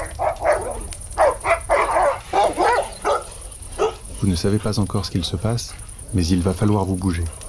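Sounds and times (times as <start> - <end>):
dog growling and snarling in short rough bursts: 0.0 - 4.2
speech: 4.2 - 7.4.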